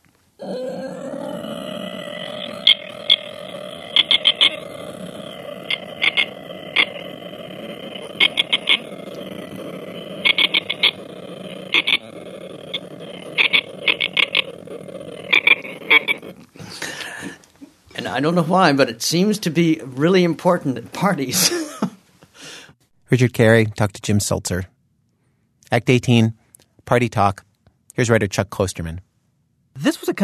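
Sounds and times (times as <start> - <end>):
human voice imitating the sound of a swamp: 0.4 - 17.4
speech: 18.1 - 21.6, 23.1 - 24.8, 25.7 - 29.1, 29.8 - 30.2.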